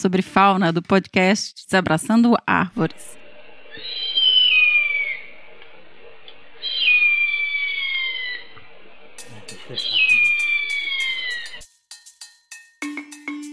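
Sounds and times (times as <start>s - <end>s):
speech: 0.0s - 3.2s, 9.7s - 10.0s
harpy eagle wailing whistles: 3.7s - 5.3s, 6.6s - 8.5s, 9.7s - 11.6s.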